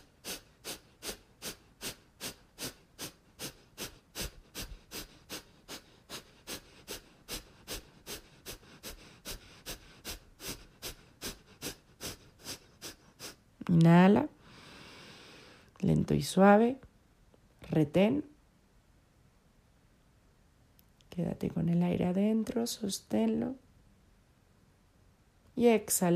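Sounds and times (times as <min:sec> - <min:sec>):
forceful kapalabhati nasal exhalations during yoga: 0:00.0 - 0:13.4
speech: 0:13.7 - 0:14.4, 0:15.9 - 0:16.9, 0:17.8 - 0:18.3, 0:21.2 - 0:23.6, 0:25.6 - 0:26.1.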